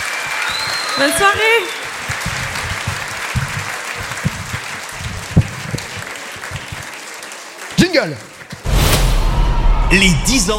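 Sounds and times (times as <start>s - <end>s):
concert audience applauding at a radio station's tenth anniversary concert: 0.0s - 8.7s
speech: 1.0s - 1.8s, 8.0s - 8.3s, 9.9s - 10.5s.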